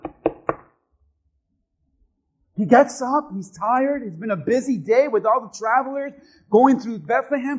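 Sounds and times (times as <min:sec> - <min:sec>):
knocking on a wooden door: 0:00.0 - 0:00.7
speech: 0:02.6 - 0:07.5.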